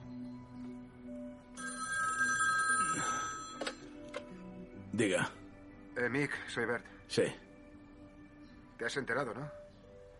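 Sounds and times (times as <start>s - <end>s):
home telephone ringing: 1.5s - 4.3s
speech: 5.0s - 5.4s, 6.0s - 7.5s, 8.8s - 9.6s.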